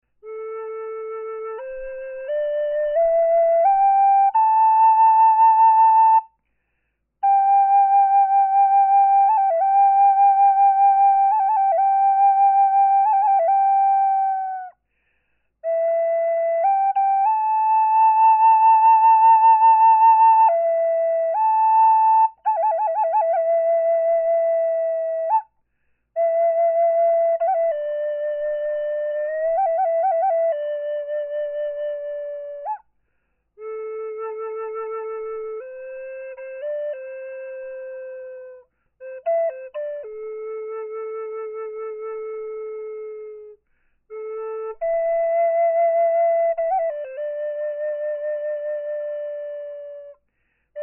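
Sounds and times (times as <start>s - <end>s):
wood flute: 0.0s - 50.8s.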